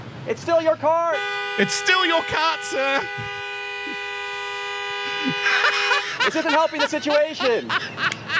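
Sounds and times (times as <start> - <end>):
speech: 0.2 - 3.4, 5.2 - 8.3
car horn blaring at a driver who left a shopping cart unreturned: 1.0 - 6.8
laughter: 5.1 - 8.3.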